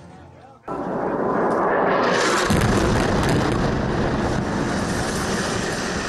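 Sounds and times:
airstrike explosion blast near a rooftop camera: 0:00.7 - 0:06.0
heavy rumbling roar after airstrike explosion: 0:00.7 - 0:06.0.

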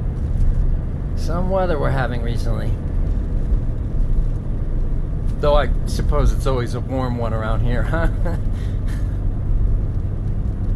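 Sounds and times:
car driving heard while riding as a passenger: 0:00.0 - 0:10.7
speech: 0:01.3 - 0:02.9, 0:05.4 - 0:08.8.

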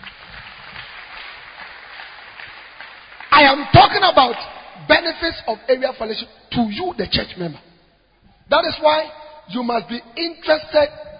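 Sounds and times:
church members applauding: 0:00.0 - 0:04.6
speech: 0:03.4 - 0:07.7, 0:08.5 - 0:11.1.

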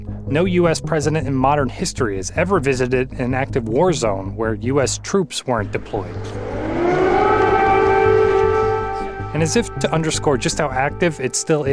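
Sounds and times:
speech: 0:00.3 - 0:06.6, 0:09.4 - 0:11.7
low rumbling hum: 0:05.6 - 0:11.1
air raid siren wailing: 0:05.6 - 0:11.7.

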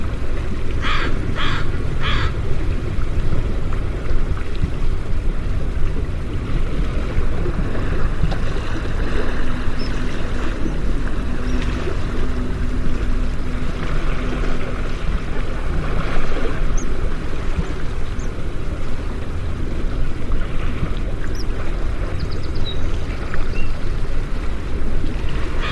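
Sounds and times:
river water rushing: 0:00.0 - 0:25.7
bird giving bright calls: 0:09.6 - 0:11.9, 0:21.2 - 0:23.8.

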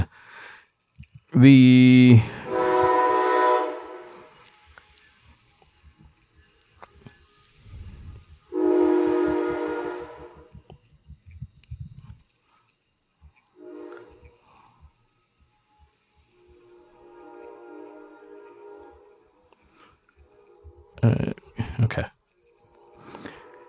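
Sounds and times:
speech: 0:01.3 - 0:02.4
train horn blaring: 0:01.6 - 0:05.4, 0:07.2 - 0:10.7, 0:13.6 - 0:14.6, 0:15.6 - 0:21.4, 0:22.4 - 0:23.6.

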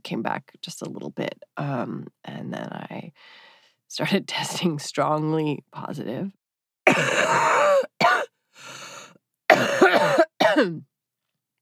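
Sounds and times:
speech: 0:00.1 - 0:07.6, 0:10.6 - 0:10.9
sick person coughing harshly: 0:06.9 - 0:08.3, 0:09.5 - 0:10.8.

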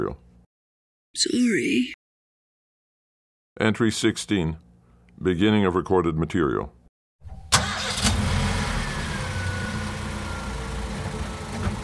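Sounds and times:
speech: 0:00.0 - 0:00.3, 0:01.1 - 0:02.0, 0:03.6 - 0:04.6, 0:05.2 - 0:06.8
car engine turning over and settling into rumbling idle: 0:07.5 - 0:11.8.

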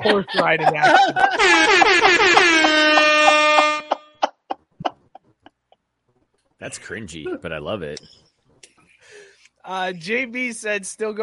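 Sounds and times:
speech: 0:00.0 - 0:03.0, 0:06.6 - 0:08.2, 0:09.6 - 0:11.2
laughter: 0:00.0 - 0:05.6
rap-style air horn blasts: 0:01.3 - 0:04.1.

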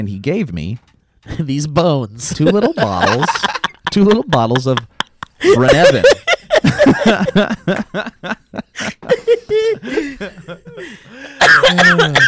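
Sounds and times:
speech: 0:00.0 - 0:12.2
wheezy chuckling: 0:02.4 - 0:12.2.

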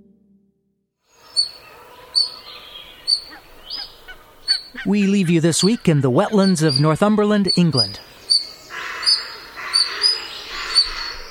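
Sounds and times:
European otters Lutra lutra giving high-pitched squeaking calls in wetlands of Northumberland: 0:03.0 - 0:11.2
speech: 0:04.8 - 0:08.1.

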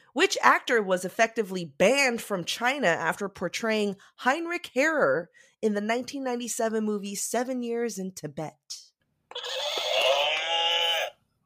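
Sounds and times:
speech: 0:00.2 - 0:09.8
horse whinny: 0:09.3 - 0:11.2.

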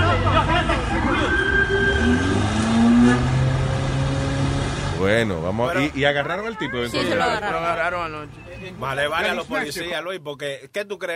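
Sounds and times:
car engine revving during police chase: 0:00.0 - 0:05.6
traffic noise: 0:00.0 - 0:11.1
siren-like tones: 0:00.1 - 0:03.5
speech: 0:05.2 - 0:11.1.

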